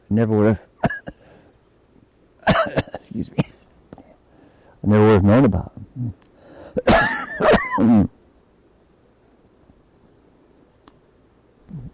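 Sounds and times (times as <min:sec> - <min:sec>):
faint room noise: 0:00.0 - 0:11.9
speech: 0:00.1 - 0:01.0, 0:02.7 - 0:03.5, 0:04.8 - 0:06.2
person coughing: 0:00.8 - 0:01.3, 0:02.4 - 0:03.6, 0:06.8 - 0:08.1.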